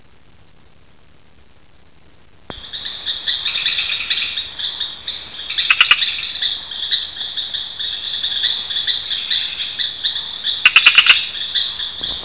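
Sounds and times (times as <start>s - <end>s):
Gephyromantis salegy frog calling: 2.5s - 12.2s.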